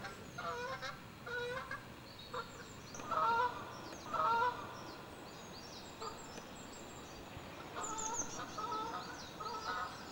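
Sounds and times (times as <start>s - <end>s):
low background noise: 0.0s - 10.0s
bird song of slurred notes and high chirps at Saltwells Nature Reserve: 2.0s - 10.0s.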